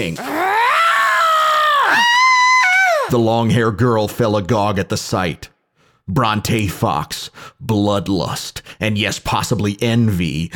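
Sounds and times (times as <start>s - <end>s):
speech: 0.0s - 0.4s, 3.1s - 5.5s, 6.1s - 10.5s
woman's short shriek: 0.2s - 3.1s.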